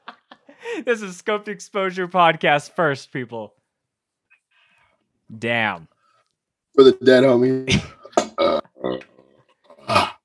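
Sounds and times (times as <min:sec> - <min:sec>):
speech: 0:00.6 - 0:03.6, 0:05.3 - 0:05.9, 0:06.8 - 0:09.1
person burping after shotgunning a beer: 0:06.8 - 0:10.2.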